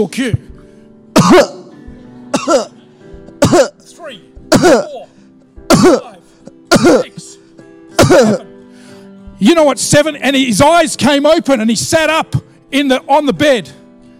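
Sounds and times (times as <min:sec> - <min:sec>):
speech: 0:00.0 - 0:00.4, 0:01.2 - 0:01.6, 0:02.4 - 0:02.7, 0:03.5 - 0:05.1, 0:05.8 - 0:06.2, 0:08.1 - 0:08.5, 0:09.4 - 0:13.8
person coughing harshly: 0:01.2 - 0:01.7, 0:02.4 - 0:02.7, 0:03.4 - 0:03.8, 0:04.5 - 0:05.1, 0:05.7 - 0:07.2, 0:08.0 - 0:08.5.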